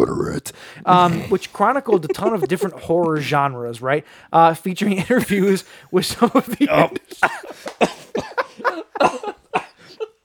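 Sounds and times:
speech: 0.0s - 10.0s
person coughing after inhaling beer: 0.9s - 2.9s, 6.4s - 10.0s
laughter: 0.9s - 3.3s, 5.0s - 10.2s.

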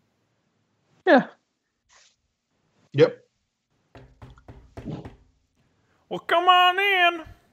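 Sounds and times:
speech: 1.0s - 1.4s, 3.0s - 3.2s, 6.1s - 7.4s
knocking on the wooden door of a sheriff's office building: 3.9s - 5.5s.

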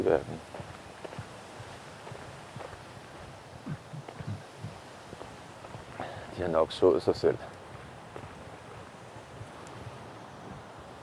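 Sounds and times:
speech: 0.0s - 0.6s, 6.4s - 7.5s
wind rustling through leaves: 0.0s - 11.0s.

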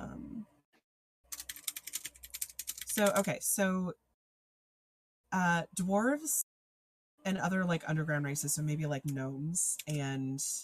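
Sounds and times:
computer keyboard typing: 1.3s - 3.4s
speech: 3.0s - 4.0s, 5.3s - 6.4s, 7.2s - 10.6s.

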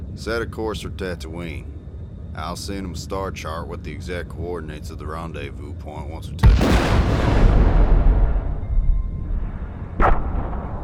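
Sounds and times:
speech: 0.2s - 1.8s, 2.4s - 7.8s
prison exploding in a huge blaze: 6.4s - 10.8s
sharp bright blast: 6.4s - 10.8s.

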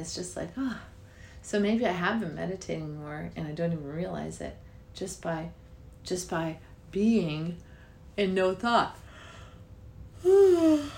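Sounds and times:
speech: 0.0s - 9.0s, 10.2s - 10.9s
person yawning: 10.2s - 10.9s.

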